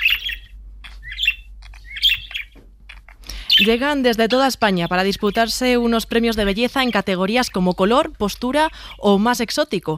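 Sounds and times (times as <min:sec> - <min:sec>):
budgerigars chirping: 0:00.0 - 0:07.8
speech: 0:03.6 - 0:09.9.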